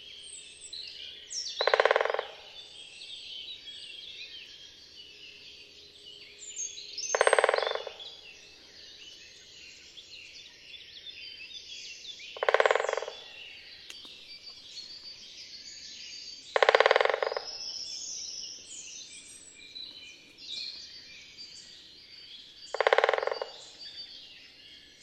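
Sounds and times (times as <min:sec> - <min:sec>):
birds singing: 0:00.0 - 0:25.0
great spotted woodpecker drumming: 0:01.6 - 0:02.4, 0:07.1 - 0:08.1, 0:12.4 - 0:13.2, 0:16.6 - 0:17.6, 0:22.7 - 0:24.0.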